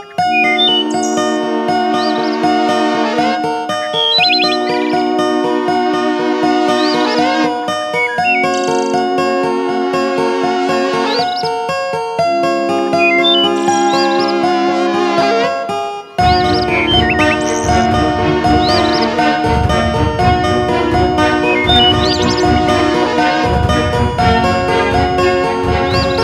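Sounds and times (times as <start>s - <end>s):
epic 432 Hz music: 0.2s - 26.2s.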